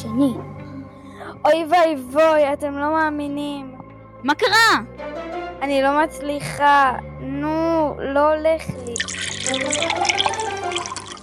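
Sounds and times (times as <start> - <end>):
speech: 0.0 - 0.5, 1.4 - 10.3
water running and splashing from a tap while washing hands: 8.9 - 11.2.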